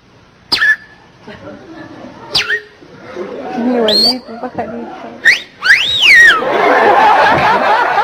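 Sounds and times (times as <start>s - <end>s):
person whistling bird-like chirps imitating a female bird: 0.5s - 0.9s, 2.3s - 2.7s, 5.2s - 6.4s
laughter: 1.2s - 4.8s, 6.3s - 8.0s.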